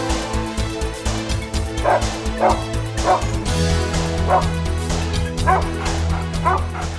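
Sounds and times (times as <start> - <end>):
steady sustained musical drone: 0.0 - 6.9
dog giving short yipping barks: 1.8 - 3.3, 4.3 - 4.5, 5.5 - 6.9.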